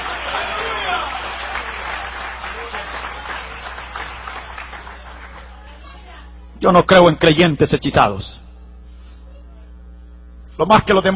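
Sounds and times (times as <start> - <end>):
large crowd applauding: 0.0 - 6.1
speech: 6.6 - 8.4, 10.6 - 11.1.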